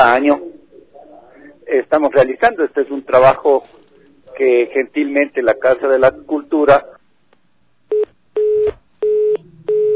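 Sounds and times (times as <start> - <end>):
speech: 0.0 - 0.5, 1.7 - 3.8, 4.4 - 7.0
telephone line tone beeps after a dropped call: 7.9 - 9.9.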